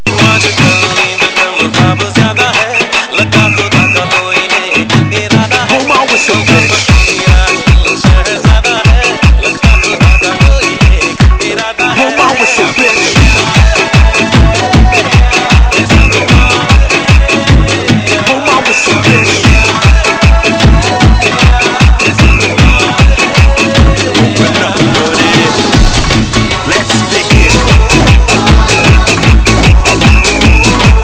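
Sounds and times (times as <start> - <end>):
dhol drumming ringtone: 0.0 - 31.0.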